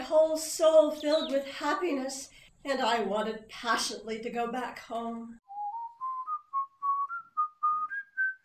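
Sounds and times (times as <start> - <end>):
speech: 0.2 - 5.4
person whistling a tune: 5.4 - 8.4.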